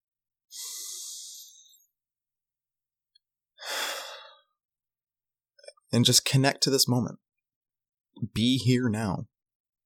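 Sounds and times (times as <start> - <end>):
deep breath taken in and out: 0.5 - 1.8, 3.6 - 4.6
speech: 5.9 - 7.2, 8.2 - 9.3.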